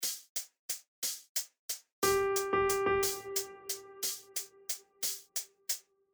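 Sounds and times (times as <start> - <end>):
sicilienne in triple time: 2.0 - 5.2.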